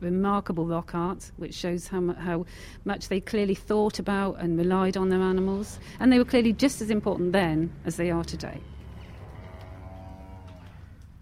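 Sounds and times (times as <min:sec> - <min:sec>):
speech: 0:00.0 - 0:08.8
cow mooing in long low bellow: 0:08.6 - 0:11.1.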